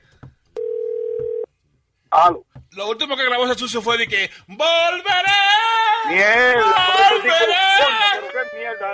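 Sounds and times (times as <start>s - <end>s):
steady electronic telephone ringing tone: 0.6s - 1.5s
speech: 2.2s - 8.9s.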